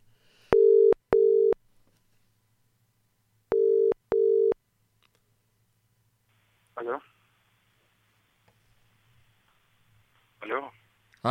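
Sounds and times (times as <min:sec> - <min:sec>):
low pure telephone line beeps while a call is placed: 0:00.5 - 0:01.6, 0:03.5 - 0:04.6.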